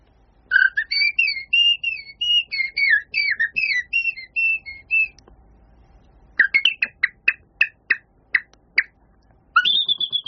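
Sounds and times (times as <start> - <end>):
male common blackbird singing its courtship song: 0.5 - 5.2, 6.4 - 8.9, 9.6 - 10.2.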